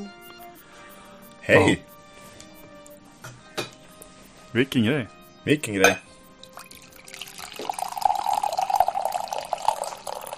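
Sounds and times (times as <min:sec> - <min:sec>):
speech: 0:01.5 - 0:01.9, 0:04.5 - 0:06.1
tea pouring into a cup: 0:06.4 - 0:10.3.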